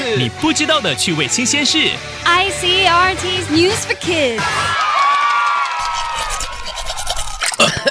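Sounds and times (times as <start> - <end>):
speech: 0.1 - 4.8
toothbrush scrubbing teeth: 5.8 - 7.7.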